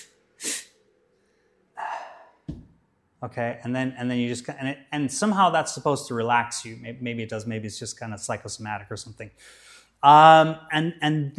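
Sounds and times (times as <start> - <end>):
person inhaling sharply: 0.0 - 0.8, 1.8 - 2.4, 9.4 - 10.0
speech: 3.2 - 11.3.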